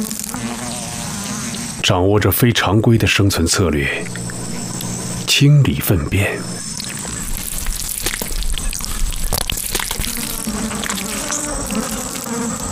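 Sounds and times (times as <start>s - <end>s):
dung beetles buzzing around dung: 0.0s - 12.7s
speech: 1.9s - 4.3s, 5.3s - 6.7s.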